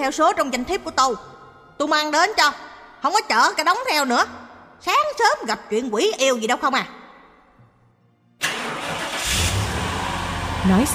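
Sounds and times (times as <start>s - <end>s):
speech: 0.0s - 7.0s, 10.6s - 10.9s
vehicle engine starting: 8.4s - 10.9s.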